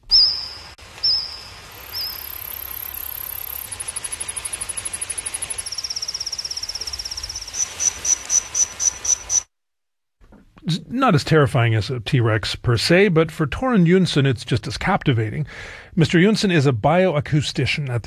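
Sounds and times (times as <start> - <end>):
recreated songs of Jurassic-era insect species: 0.0 - 9.5
speech: 10.9 - 18.0.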